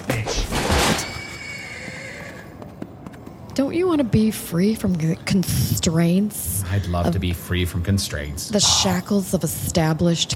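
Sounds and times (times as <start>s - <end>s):
horse giving a long loud whinny: 0.9s - 2.6s, 8.6s - 9.1s
speech: 3.6s - 10.3s.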